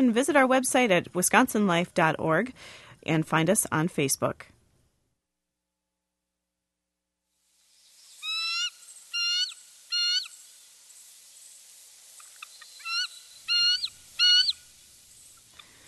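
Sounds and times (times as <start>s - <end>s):
speech: 0.0s - 4.5s
bald eagle peal call: 8.2s - 10.4s, 12.5s - 14.6s, 15.6s - 15.8s.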